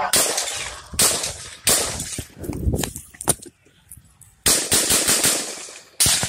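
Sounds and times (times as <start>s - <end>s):
gunshots in a witness video of a shooting: 0.1s - 2.3s, 4.4s - 6.2s.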